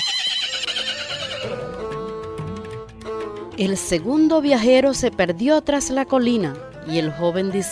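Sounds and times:
horse whinnying: 0:00.0 - 0:01.8
speech: 0:03.6 - 0:07.7.

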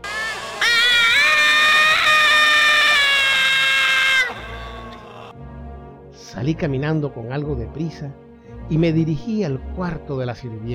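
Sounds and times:
high-pitched scream of terror: 0:00.0 - 0:05.3
speech: 0:06.4 - 0:10.7.

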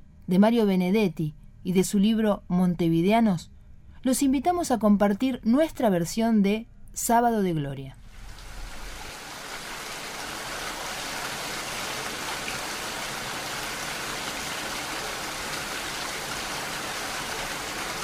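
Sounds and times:
speech: 0:00.3 - 0:08.0
steady rain falling: 0:08.1 - 0:18.0.

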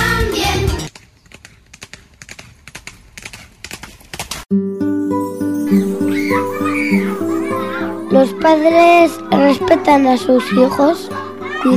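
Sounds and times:
horse hooves clip-clopping: 0:00.9 - 0:04.5
loud music with a bright melody and chirping accents: 0:04.5 - 0:11.7
speech: 0:08.2 - 0:11.7.

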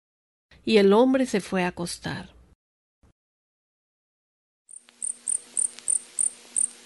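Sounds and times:
speech: 0:00.6 - 0:02.4
cricket chirping inside a ranch house: 0:04.7 - 0:06.8.

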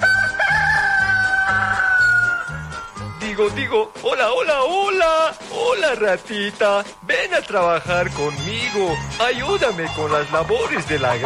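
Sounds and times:
loud drawn-out rooster crow: 0:00.0 - 0:02.9
rhythmic repeating low musical backing: 0:00.0 - 0:11.2
speech: 0:03.4 - 0:11.2.

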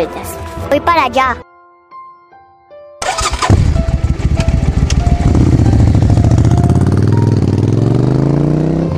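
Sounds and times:
speech: 0:00.0 - 0:01.5
motorcycle engine cranking and catching: 0:03.0 - 0:08.9.

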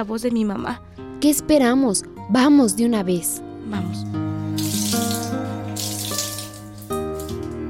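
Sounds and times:
speech: 0:00.0 - 0:05.4
water running from a tap while laundry is rinsed: 0:04.1 - 0:07.6.

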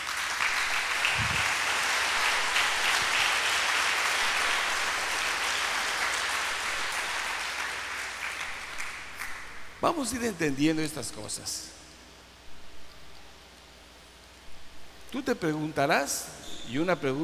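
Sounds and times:
audience applauding: 0:00.0 - 0:09.6
speech: 0:09.8 - 0:11.8, 0:15.1 - 0:17.2.

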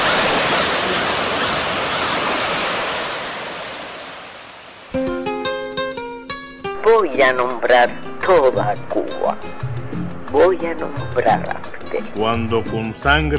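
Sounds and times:
ocean surf washing with gentle swells: 0:00.0 - 0:08.4
bright plucked melody: 0:05.0 - 0:13.3
speech: 0:07.2 - 0:09.7, 0:10.3 - 0:13.3.

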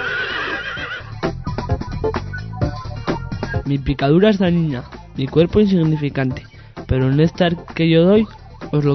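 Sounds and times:
horse whinnying: 0:00.0 - 0:01.1
speech: 0:03.7 - 0:08.9.

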